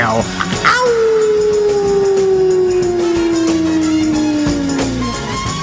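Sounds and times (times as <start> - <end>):
coyote howling: 0.0 - 5.5.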